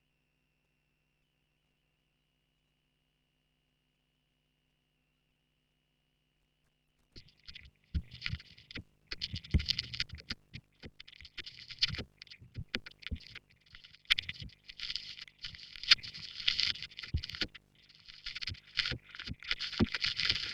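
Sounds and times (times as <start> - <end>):
vinyl record noise: 7.2 - 20.5
vocoder in pseudo stereo: 7.2 - 20.5.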